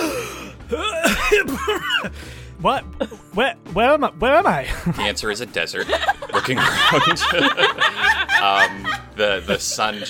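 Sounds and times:
speech: 0:00.7 - 0:10.0
person in a desert gasping for breath: 0:02.0 - 0:02.6
laughter: 0:04.6 - 0:10.0.

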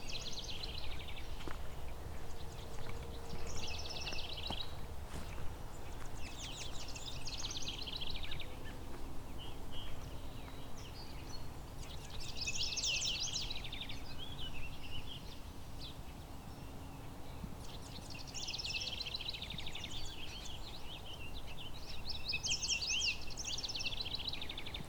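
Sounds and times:
house wren song: 0:00.0 - 0:24.8.

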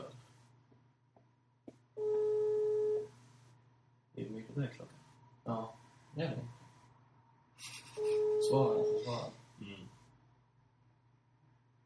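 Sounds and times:
phone ringing tone as a call connects: 0:02.0 - 0:03.1, 0:08.0 - 0:09.1
speech: 0:04.6 - 0:06.5.

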